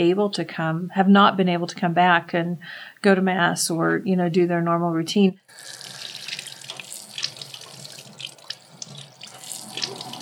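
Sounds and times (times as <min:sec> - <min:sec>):
speech: 0:00.0 - 0:05.9
water flowing from a spring: 0:05.5 - 0:10.2.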